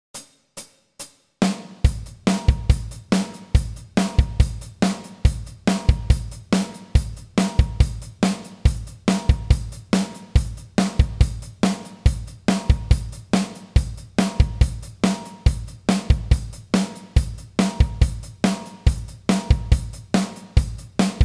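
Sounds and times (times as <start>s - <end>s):
drums playing chorus: 0.2s - 21.2s.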